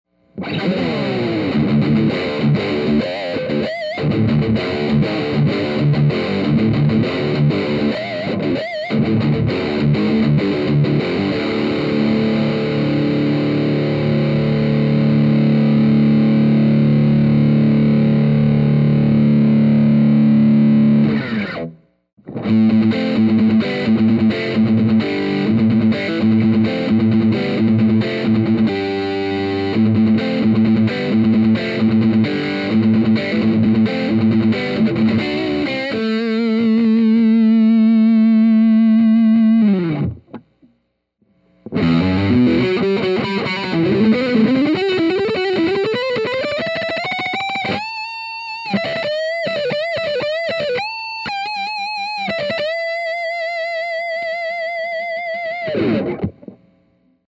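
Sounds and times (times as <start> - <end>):
distorted electric guitar with humbucker pickup: 0.2 - 57.2.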